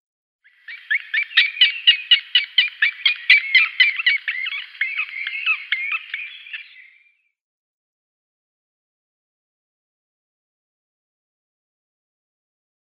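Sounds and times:
Green Woodpecker nestlings: 0.7s - 6.9s.

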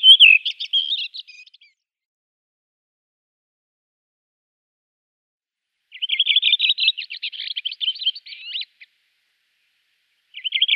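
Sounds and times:
Redwing song of whistled notes and scratchy twittering: 0.0s - 1.8s, 5.8s - 10.7s.

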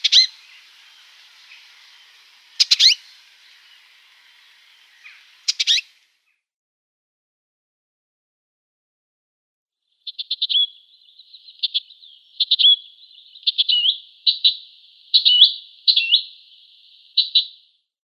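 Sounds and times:
icterine warbler giving sharp clicking and stuttering calls: 0.0s - 6.1s, 10.0s - 17.6s.

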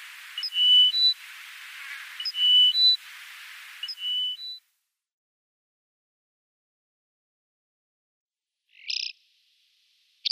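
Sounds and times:
bar-tailed lark singing: 0.0s - 4.6s, 8.8s - 9.2s.

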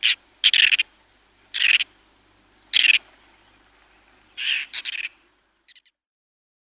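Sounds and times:
whiskered tern calling with rasping, grating notes: 0.0s - 0.9s, 1.5s - 2.0s, 2.6s - 6.0s.

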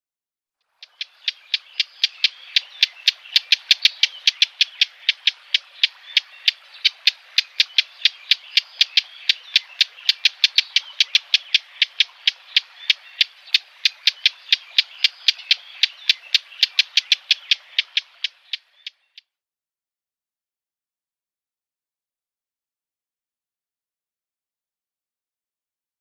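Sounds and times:
Lesser Whitethroat calls: 0.7s - 19.2s.

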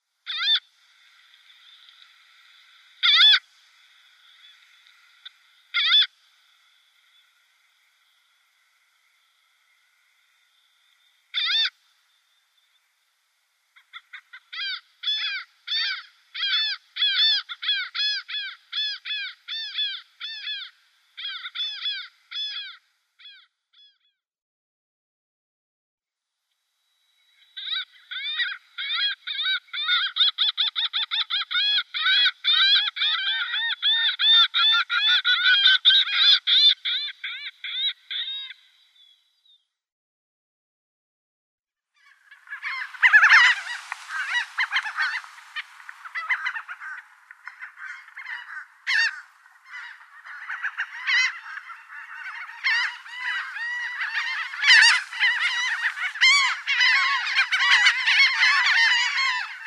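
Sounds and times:
Laughing Gull calling: 0.3s - 10.5s, 11.3s - 11.8s, 13.8s - 24.0s, 27.5s - 38.8s, 42.0s - 59.6s.

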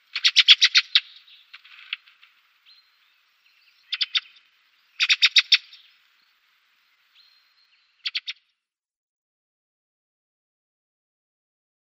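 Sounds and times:
ring ouzel harsh ticking calls: 0.0s - 2.4s, 3.6s - 6.0s, 7.6s - 8.5s.

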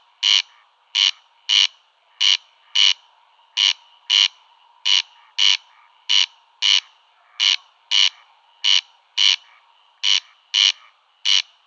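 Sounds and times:
corn crake rasping display call: 0.0s - 11.6s
faint hum: 0.0s - 11.6s.

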